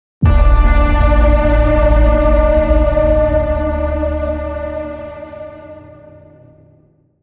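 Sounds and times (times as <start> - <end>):
boom signal: 0.2 - 6.8.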